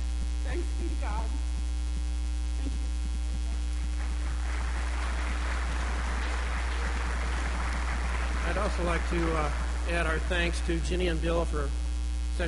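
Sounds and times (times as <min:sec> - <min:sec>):
low electrical hum: 0:00.0 - 0:12.4
speech: 0:00.5 - 0:01.6, 0:08.6 - 0:11.8
rain pattering: 0:03.8 - 0:10.6.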